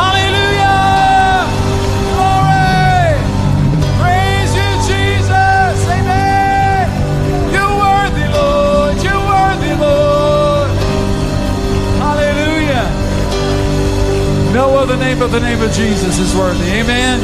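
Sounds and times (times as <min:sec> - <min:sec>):
rising and falling whoops from a crowd: 0:00.0 - 0:07.8
crowd shouting praise aloud: 0:00.0 - 0:13.0
steady low rumble: 0:00.0 - 0:17.2
speech: 0:15.2 - 0:17.2.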